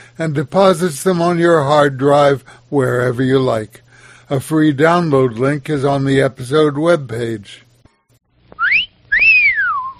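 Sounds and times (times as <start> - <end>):
speech: 0.2 - 7.6
appreciative human wolf whistle: 8.6 - 9.9.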